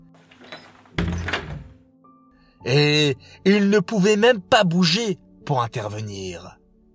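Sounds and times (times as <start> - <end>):
door creaking and scraping as it swings: 0.0 - 1.8
door slamming shut with a heavy resonant thunk: 0.3 - 1.8
speech: 2.6 - 6.6.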